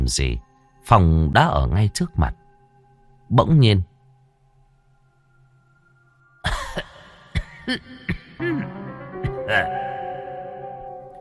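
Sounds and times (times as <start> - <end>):
speech: 0.1 - 2.4, 3.3 - 3.9, 7.7 - 8.8, 9.5 - 9.8
person hacking coughs: 6.4 - 9.8
person clearing throat: 6.4 - 10.0.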